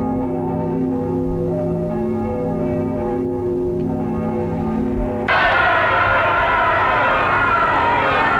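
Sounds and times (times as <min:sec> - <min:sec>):
steady ringing tones: 0:00.0 - 0:08.3
loud crowd cheering and shouting joyfully: 0:05.3 - 0:08.3.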